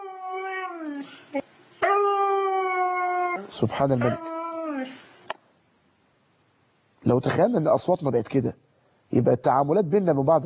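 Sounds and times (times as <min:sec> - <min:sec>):
dog howling in imitation of a wolf: 0:00.0 - 0:01.2, 0:01.8 - 0:05.1
speech: 0:01.0 - 0:01.5, 0:03.5 - 0:05.0, 0:07.1 - 0:10.4.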